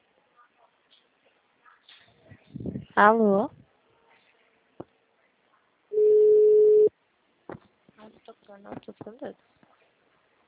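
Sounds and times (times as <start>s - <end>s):
speech: 3.0s - 3.6s, 8.6s - 9.6s
telephone busy signal beep: 6.0s - 6.9s.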